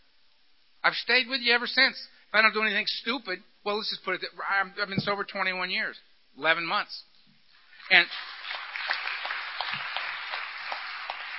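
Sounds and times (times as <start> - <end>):
speech: 0.9 - 7.1, 7.9 - 8.4
audience applauding a speaker: 7.7 - 11.3.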